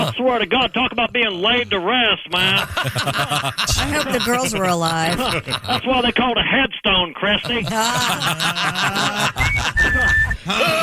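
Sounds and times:
voices chuckling: 0.0 - 6.6, 7.2 - 10.8
speech: 0.1 - 10.8
person whistling a short high tone: 9.4 - 10.5.

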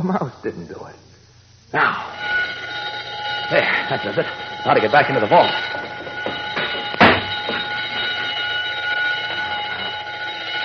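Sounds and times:
speech: 0.0 - 1.1, 1.7 - 2.4, 3.5 - 5.9
burglar alarm ringing: 1.9 - 10.6
sharp knock: 6.0 - 8.0.

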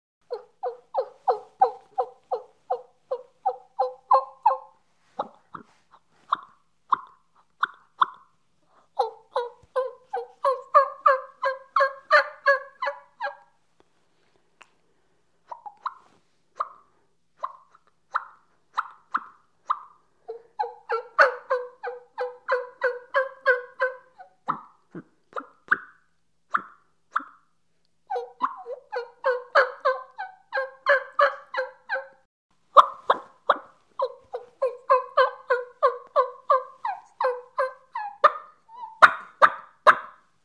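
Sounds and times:
hen turkey clucks made on a turkey call: 0.2 - 13.5, 15.5 - 27.5, 28.1 - 40.4
raspy hen turkey tree yelps made on a turkey call: 0.3 - 5.4, 9.0 - 13.5, 15.5 - 24.8, 25.4 - 27.4, 28.1 - 32.2, 32.8 - 40.4.

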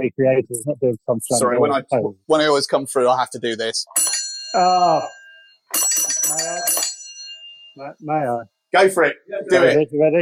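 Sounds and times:
people talking loudly: 0.0 - 3.0, 7.9 - 10.2
speech: 0.0 - 6.9, 7.8 - 10.2
railway signal bell dinging: 3.9 - 8.0.

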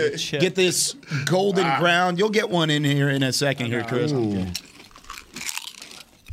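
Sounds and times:
speech: 0.0 - 4.7
crisp crunch of someone biting into crunchy food: 4.4 - 6.3.

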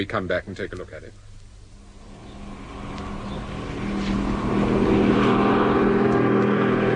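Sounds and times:
speech: 0.0 - 1.3
faulty car engine running on a drive toward the coast: 1.6 - 6.9.

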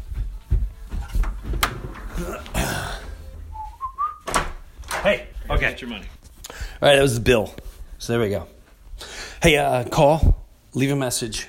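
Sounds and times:
thin rising squeak of a door being opened: 1.2 - 5.2
speech: 2.2 - 2.6, 5.0 - 6.2, 6.8 - 8.6, 9.4 - 11.4.

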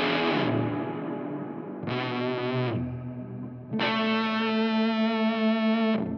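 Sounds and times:
electric guitar chords through overdrive and reverb pedal: 0.0 - 6.1.

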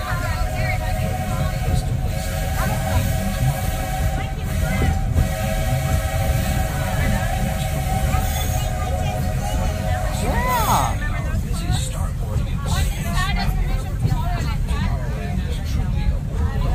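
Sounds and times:
steam train hissing: 0.0 - 11.5
steam train running: 0.0 - 16.7.

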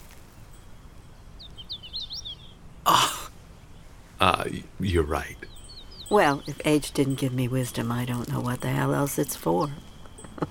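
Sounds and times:
hooded warbler singing: 0.0 - 10.4
person coughing: 2.9 - 3.3
speech: 4.4 - 10.4.

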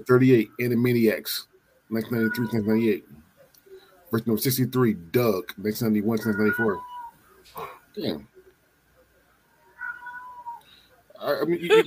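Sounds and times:
speech: 0.0 - 3.2, 4.1 - 8.3, 11.2 - 11.8
cat meowing: 2.0 - 2.9, 6.2 - 7.2, 9.6 - 10.6.

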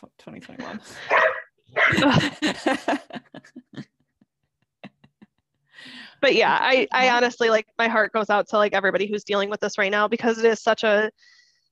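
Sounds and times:
speech: 0.2 - 3.6, 6.2 - 11.4
dogs barking and yipping in the morning: 1.1 - 2.0
laughter: 1.8 - 5.5.

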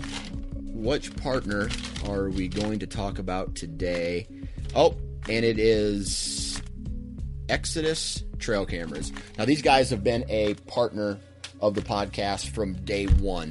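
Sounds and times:
paper crinkling and rustling: 0.0 - 3.0
speech: 0.8 - 6.5, 7.5 - 13.4.

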